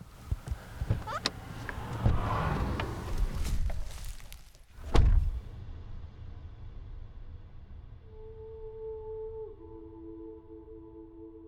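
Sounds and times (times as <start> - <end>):
car approaching on the way down to a beach shoreline: 0.0 - 5.5.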